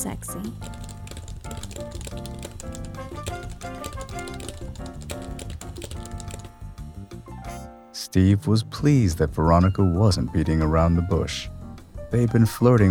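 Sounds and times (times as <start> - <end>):
speech: 0.0 - 0.8, 8.1 - 12.8
keyboard typing as a message is written: 0.4 - 6.8.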